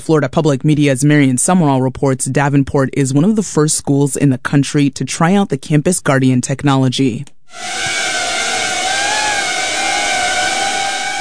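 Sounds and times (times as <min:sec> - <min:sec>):
speech: 0:00.0 - 0:08.0
small security drone propellers buzzing in flight at a high school in Florida: 0:07.5 - 0:11.1.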